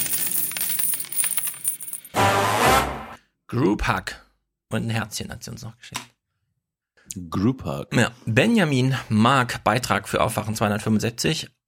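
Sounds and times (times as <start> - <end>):
coins dropping and clinking: 0.0 - 2.2
speech: 3.5 - 6.1, 7.1 - 11.6.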